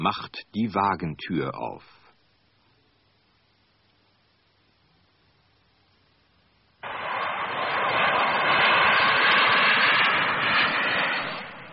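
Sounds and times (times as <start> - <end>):
speech: 0.0 - 2.0
passenger jet engine roar: 6.8 - 11.7.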